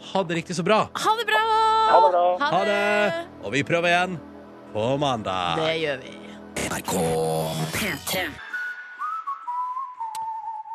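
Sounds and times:
soft musical backing: 0:00.0 - 0:10.7
speech: 0:00.1 - 0:06.2, 0:06.8 - 0:08.5
whistled melody with long gliding notes: 0:08.4 - 0:10.7.

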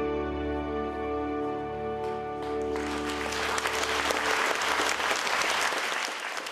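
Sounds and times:
sustained orchestral chord: 0:00.0 - 0:04.9
large theatre audience giving standing-ovation applause: 0:02.0 - 0:06.4.

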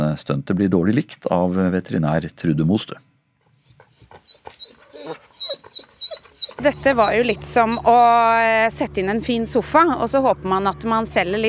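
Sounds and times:
speech: 0:00.2 - 0:03.1, 0:06.6 - 0:11.4
dog whimpering and yipping: 0:03.6 - 0:08.0.

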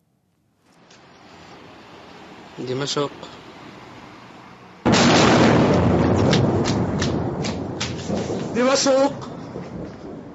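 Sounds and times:
speech: 0:02.6 - 0:03.4, 0:08.6 - 0:09.3
bomb blast: 0:04.8 - 0:10.3
roaring rumble with sharp crackling bursts: 0:04.9 - 0:10.3.

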